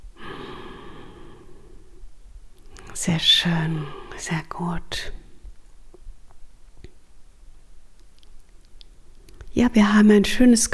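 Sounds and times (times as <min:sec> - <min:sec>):
deep breath in and out: 0:00.1 - 0:03.0, 0:03.7 - 0:04.3
speech: 0:03.0 - 0:05.2, 0:09.6 - 0:10.7.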